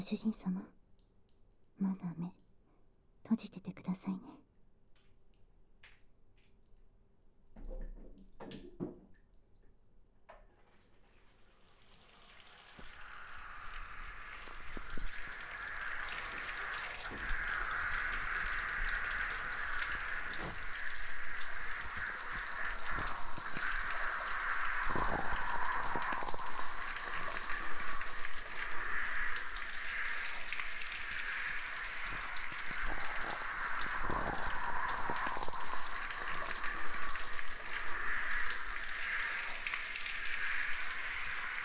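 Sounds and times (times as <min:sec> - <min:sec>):
speech: 0:00.0 - 0:00.8, 0:01.8 - 0:02.4, 0:03.3 - 0:04.4
running water rinsing shampoo out of hair during a hair wash: 0:11.0 - 0:41.6.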